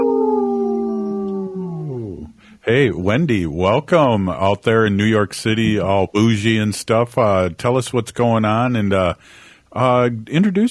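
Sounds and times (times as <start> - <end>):
wolf howling: 0.0 - 2.3
speech: 2.6 - 10.6.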